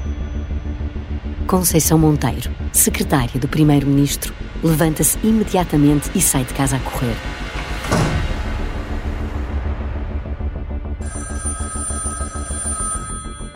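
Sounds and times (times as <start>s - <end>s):
dense low rumble: 0.0s - 11.0s
speech: 1.5s - 8.0s
telephone bell ringing with a rapid metallic trill: 11.0s - 13.5s.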